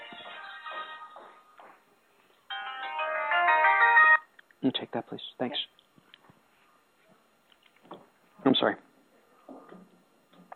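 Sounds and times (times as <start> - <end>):
cell phone ringtone playing a bright melodic electronic tune: 2.5 - 4.3
speech: 4.6 - 5.8, 8.6 - 8.8.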